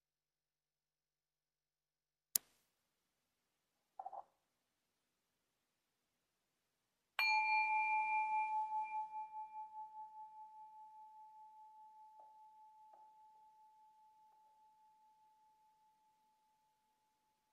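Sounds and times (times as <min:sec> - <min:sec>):
meditation bell ringing: 0:07.2 - 0:16.1.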